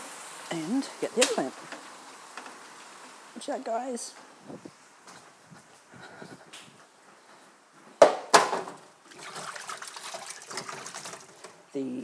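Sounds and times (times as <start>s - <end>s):
speech: 0.5s - 1.8s, 3.4s - 4.8s, 11.8s - 12.0s
sharp clunks: 8.0s - 8.8s
kitchen tap running while hands are washed: 9.1s - 11.4s.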